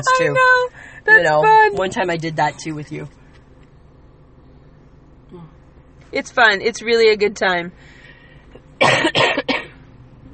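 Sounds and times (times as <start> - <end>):
speech: 0.0 - 3.2, 6.1 - 8.0, 8.8 - 9.3
harsh coughs: 8.8 - 9.8.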